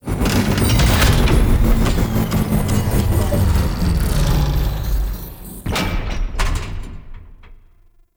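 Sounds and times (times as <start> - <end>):
machine thrum: 0.0 - 7.9.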